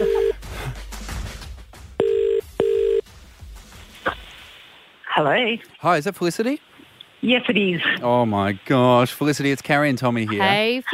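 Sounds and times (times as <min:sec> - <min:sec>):
electronic phone ringback tone: 0:00.0 - 0:00.4, 0:02.0 - 0:03.0
speech: 0:05.2 - 0:10.9.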